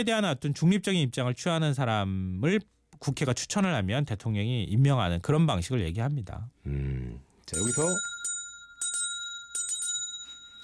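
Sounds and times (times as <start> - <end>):
speech: 0.0 - 8.1
small bell rung softly: 7.5 - 10.6.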